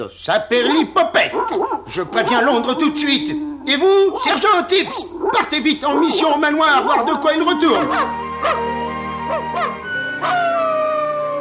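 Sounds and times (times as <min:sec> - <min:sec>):
speech: 0:00.0 - 0:08.7
dogs barking: 0:00.5 - 0:10.8.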